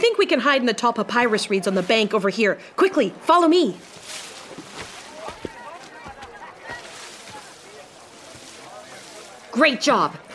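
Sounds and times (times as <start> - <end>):
speech: 0.1 - 4.2, 9.6 - 10.2
water splashing from boats poled through water: 3.1 - 10.3.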